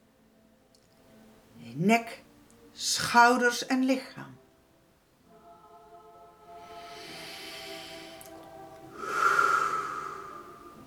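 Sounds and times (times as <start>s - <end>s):
speech: 1.8s - 4.4s
slow breathing during a relaxation exercise: 6.5s - 10.8s.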